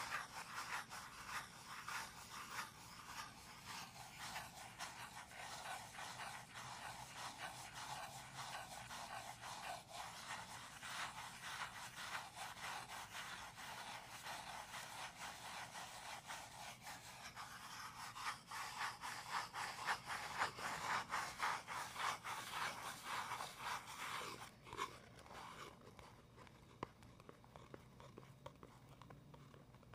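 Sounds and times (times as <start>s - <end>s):
gentle scratching: 0.0s - 29.9s
soft tapping: 24.4s - 29.9s.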